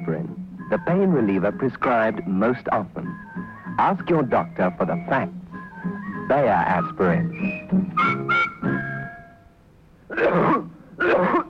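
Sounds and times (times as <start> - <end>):
speech: 0.1 - 5.4, 6.3 - 8.4
harsh raspy chesty cough: 10.1 - 11.4.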